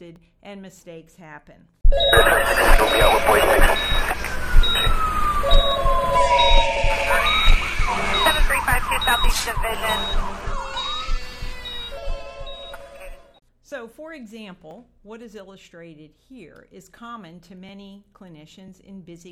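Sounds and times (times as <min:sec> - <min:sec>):
speech: 0:00.0 - 0:10.7, 0:13.7 - 0:19.3
steady high-pitched beep in a busy clinic: 0:01.9 - 0:13.4
sweeping wailing alarms in a busy clinic: 0:01.9 - 0:13.4
indistinct voices in a busy clinic: 0:02.1 - 0:12.0.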